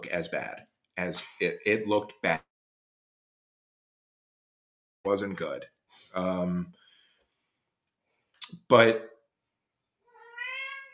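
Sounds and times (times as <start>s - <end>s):
speech: 0.0s - 2.5s, 5.0s - 6.8s, 8.5s - 9.1s
cat meowing: 10.1s - 10.9s.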